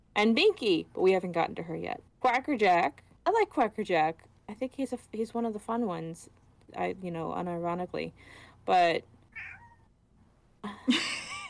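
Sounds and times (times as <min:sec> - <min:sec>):
speech: 0:00.2 - 0:09.6, 0:10.6 - 0:11.1
female pet cat meowing: 0:09.3 - 0:09.9.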